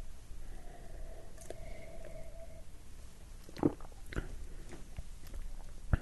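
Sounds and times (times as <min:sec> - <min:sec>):
someone sipping a drink with soft wet slurps and small clicks: 0:00.6 - 0:02.6, 0:03.4 - 0:06.0.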